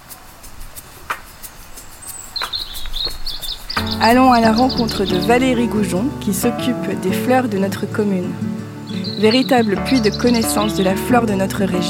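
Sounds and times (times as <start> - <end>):
faint outdoor noise: 0.0 - 11.8
birdsong chirping in short bright trills: 0.8 - 6.5, 7.4 - 11.8
bird's high warbling notes: 3.8 - 11.8
speech: 4.0 - 11.8.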